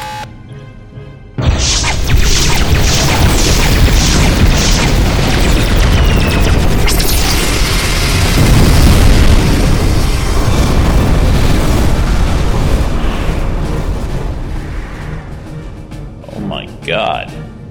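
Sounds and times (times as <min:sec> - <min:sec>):
spaceship weapons firing a volley: 0:01.4 - 0:15.4
explosions: 0:01.4 - 0:16.0.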